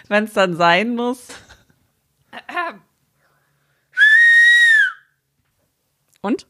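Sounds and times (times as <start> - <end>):
speech: 0.0 - 1.4, 6.2 - 6.4
person whistling one note through pursed lips: 4.0 - 5.2.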